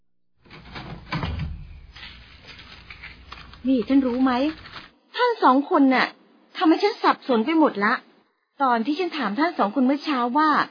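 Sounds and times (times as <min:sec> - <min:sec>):
door of rented overnight lodging being opened: 0:00.4 - 0:04.9
rough scraping and rattling of a door being opened: 0:00.4 - 0:04.9
heavy knock of a door being opened: 0:00.5 - 0:01.8
speech: 0:03.6 - 0:04.6, 0:05.2 - 0:10.7.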